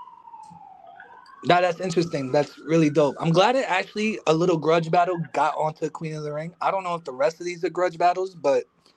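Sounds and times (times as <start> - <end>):
emergency vehicle siren wailing on a city street in New York City: 0.0 - 8.9
faint street noise: 0.0 - 8.9
speech: 1.4 - 8.8.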